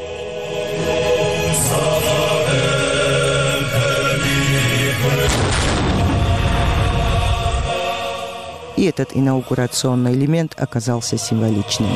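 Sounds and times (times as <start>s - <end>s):
loud continuous outdoor music: 0.0s - 11.9s
ceremonial cannon firing: 5.2s - 7.2s
speech: 8.9s - 11.9s.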